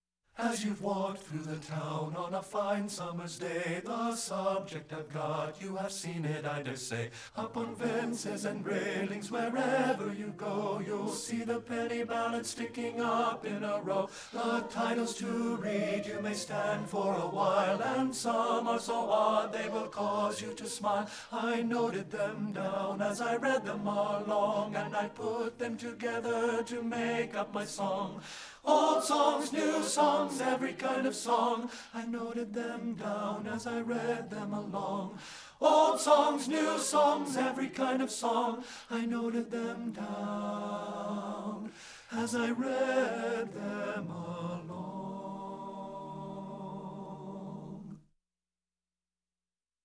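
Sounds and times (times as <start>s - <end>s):
tenor singing a madrigal: 0.4s - 47.6s.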